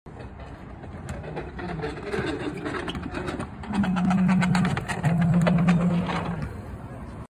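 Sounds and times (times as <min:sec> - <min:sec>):
electric scooter: 0:00.2 - 0:07.2.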